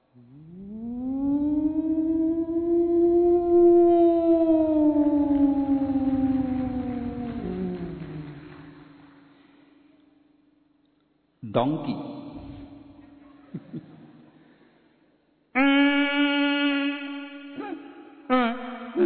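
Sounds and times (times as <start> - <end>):
voice imitating a big factory siren: 0.2 - 8.8, 15.6 - 19.0
speech: 11.6 - 12.1.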